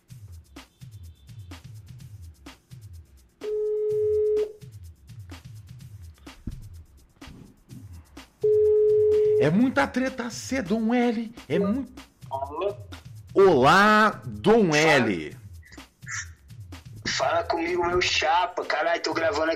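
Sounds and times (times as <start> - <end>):
soft thumping beat: 0.0 - 19.5
ringback tone of an outgoing phone call: 3.4 - 4.6, 8.4 - 9.5
speech: 9.4 - 12.0, 13.4 - 15.4, 17.6 - 19.5.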